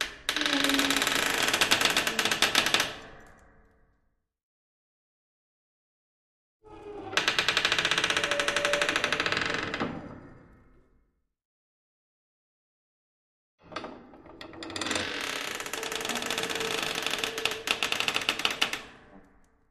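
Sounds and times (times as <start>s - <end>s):
trapdoor creaking heavily: 0.3s - 2.8s, 6.7s - 10.0s, 14.6s - 18.9s.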